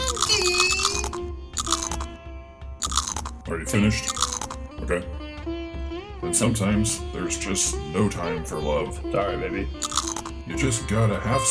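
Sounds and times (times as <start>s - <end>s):
crunching potato chips: 0.0s - 2.1s, 2.8s - 3.4s, 4.0s - 4.6s, 9.8s - 10.4s
speech: 3.5s - 4.2s, 4.8s - 5.6s, 6.2s - 9.9s, 10.5s - 11.4s.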